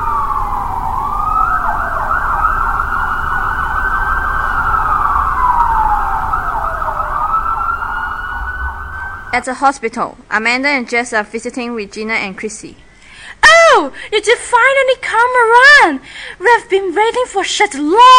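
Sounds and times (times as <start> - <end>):
ambulance siren wailing: 0.0 - 9.4
low rumble of traffic: 0.0 - 9.5
speech: 9.4 - 12.8, 13.7 - 18.1.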